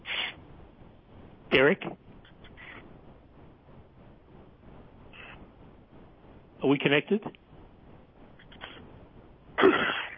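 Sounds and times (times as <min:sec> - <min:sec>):
faint breathy noises: 0:00.0 - 0:00.5, 0:05.1 - 0:05.6, 0:08.4 - 0:09.0
speech: 0:01.5 - 0:02.0, 0:06.6 - 0:07.4
harsh cough: 0:09.6 - 0:10.1.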